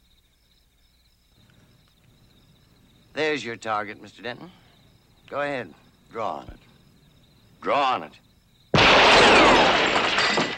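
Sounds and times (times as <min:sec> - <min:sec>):
speech: 0:03.2 - 0:04.6, 0:05.3 - 0:06.6, 0:07.6 - 0:08.2
street light glass shattering: 0:08.8 - 0:10.5
glass shards tinkling: 0:09.4 - 0:10.5.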